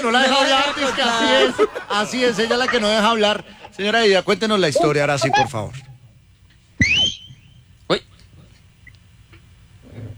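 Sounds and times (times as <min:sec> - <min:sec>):
laughter: 0:00.0 - 0:03.9
speech: 0:00.0 - 0:05.9, 0:07.9 - 0:08.1
loud whistle blown by a person to call for order: 0:06.8 - 0:07.5.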